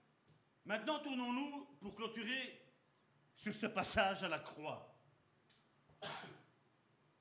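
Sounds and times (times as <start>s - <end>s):
speech: 0.7s - 2.6s, 3.4s - 4.9s
cough: 6.0s - 6.6s.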